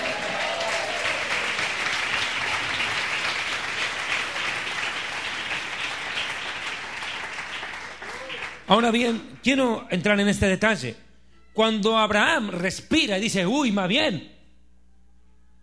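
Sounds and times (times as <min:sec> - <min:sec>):
audience applauding: 0:00.0 - 0:09.6
speech: 0:08.7 - 0:11.0, 0:11.6 - 0:14.3.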